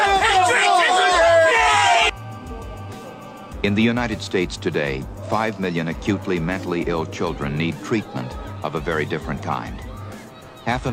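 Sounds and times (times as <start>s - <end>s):
large crowd chanting and shouting in unison: 0.0s - 4.2s, 5.0s - 10.9s
speech: 3.6s - 9.8s, 10.6s - 10.9s.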